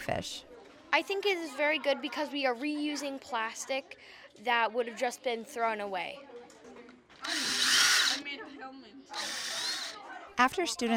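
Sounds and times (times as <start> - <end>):
speech: 0.0 - 6.3, 10.4 - 10.9
power drill drilling holes in plastic: 7.2 - 8.3, 9.1 - 10.0.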